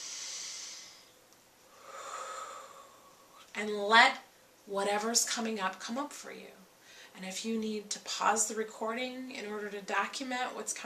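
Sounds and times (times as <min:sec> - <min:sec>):
slow breathing: 0:00.0 - 0:03.5
speech: 0:03.6 - 0:06.6, 0:07.2 - 0:10.8.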